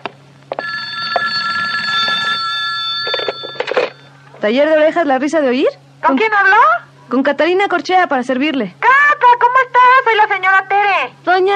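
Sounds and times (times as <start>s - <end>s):
telephone ringing with an electronic trill: 0.5s - 4.2s
speech: 4.4s - 8.9s, 10.2s - 11.5s.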